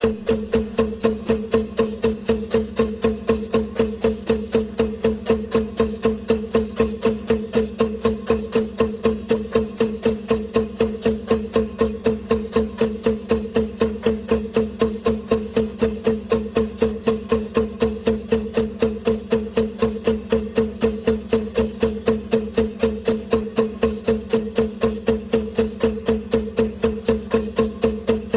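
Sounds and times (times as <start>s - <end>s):
combined hand drum: 0.0s - 28.3s.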